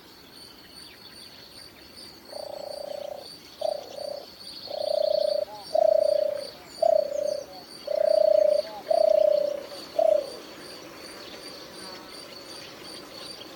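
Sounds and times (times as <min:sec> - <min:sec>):
wood pigeon cooing: 0:02.3 - 0:10.4.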